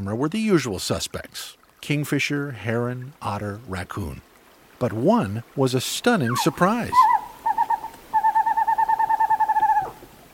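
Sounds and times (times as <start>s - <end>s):
speech: 0.0s - 7.2s
western screech owl calling: 6.3s - 10.0s.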